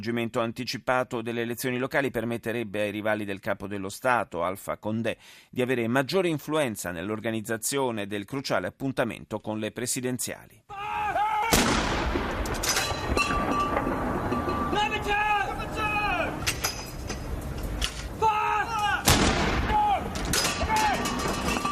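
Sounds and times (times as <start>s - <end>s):
speech: 0.0s - 11.1s
cannon salute salvos booming outdoors: 11.4s - 16.6s, 18.1s - 21.6s.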